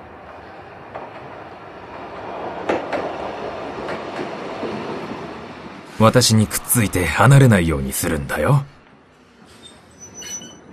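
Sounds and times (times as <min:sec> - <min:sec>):
packed electric train rumbling into a station: 0:00.0 - 0:10.7
speech: 0:06.0 - 0:08.8
metallic clanks and squeals from train wheels: 0:09.4 - 0:10.7.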